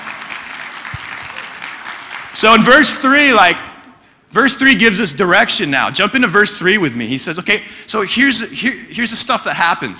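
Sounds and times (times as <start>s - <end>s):
audience clapping: 0.0s - 3.0s
speech: 2.4s - 3.7s, 4.4s - 9.9s.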